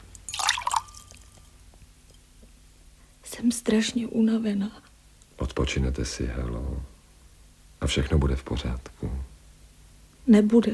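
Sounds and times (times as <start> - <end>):
water poured into a glass: 0.0 - 1.4
soft hum: 0.0 - 10.7
speech: 3.4 - 6.9, 7.8 - 9.3, 10.3 - 10.7.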